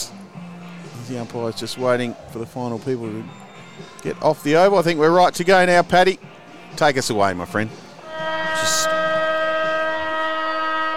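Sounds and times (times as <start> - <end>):
faint crowd ambience at football ground: 0.0 - 10.5
speech: 1.1 - 7.8
football ground siren sounding to start the last quarter: 8.0 - 10.9.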